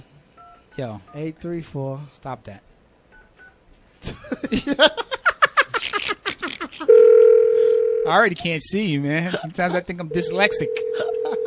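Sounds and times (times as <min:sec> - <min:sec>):
speech: 0:00.8 - 0:02.7, 0:04.0 - 0:05.2, 0:08.1 - 0:11.1
laughter: 0:04.0 - 0:06.9, 0:09.2 - 0:10.0, 0:10.8 - 0:11.4
phone dialing beeps: 0:06.9 - 0:08.1, 0:10.1 - 0:11.4.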